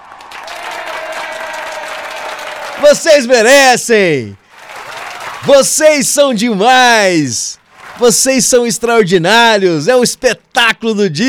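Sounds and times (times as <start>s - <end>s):
audience applause: 0.0s - 3.4s, 4.4s - 6.0s, 7.7s - 8.5s
speech: 2.8s - 4.4s, 5.4s - 11.2s.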